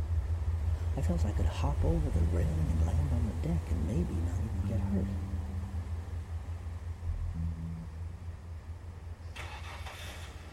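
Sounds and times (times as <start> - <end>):
speech: 1.0 - 5.3
car engine starting and driving off: 1.0 - 10.5.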